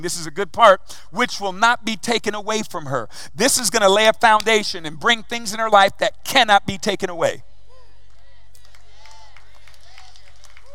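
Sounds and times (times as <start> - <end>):
speech: 0.0 - 7.5
audience clapping hands in a large room: 8.5 - 10.7.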